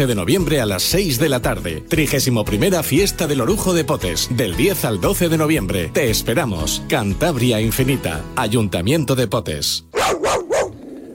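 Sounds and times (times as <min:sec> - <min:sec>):
speech: 0:00.0 - 0:09.9
dog barking: 0:09.9 - 0:10.8.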